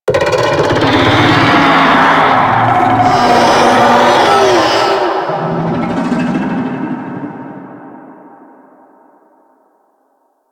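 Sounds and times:
infested golem death vocal: 0.6 - 6.4.

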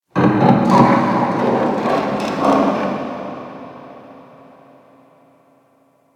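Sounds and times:
distant metal creak: 0.7 - 4.2.

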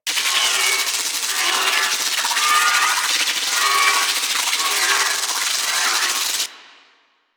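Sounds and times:
train sparks crackling: 0.1 - 6.5
train drone: 0.1 - 6.7.

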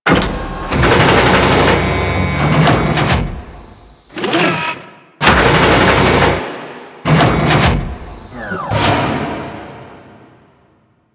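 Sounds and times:
shipyard crusher arm machinery: 0.1 - 6.2, 7.1 - 9.3.

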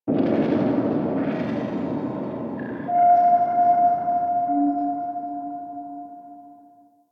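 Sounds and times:
deep space booms: 0.1 - 5.0.

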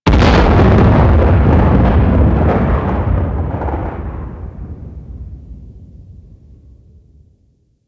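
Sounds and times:
distant explosion in a space battle: 0.0 - 7.4.

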